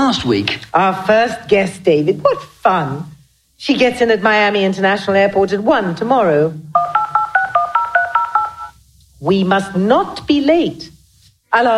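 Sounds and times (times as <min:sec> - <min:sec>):
speech: 0:00.1 - 0:07.0, 0:09.2 - 0:10.9, 0:11.5 - 0:11.7
touch-tone beeps as a phone number is keyed in: 0:06.8 - 0:08.8.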